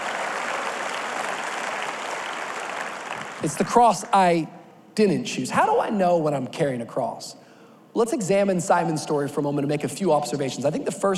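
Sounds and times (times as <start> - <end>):
audience applause: 0.0 - 3.6
speech: 3.4 - 11.1.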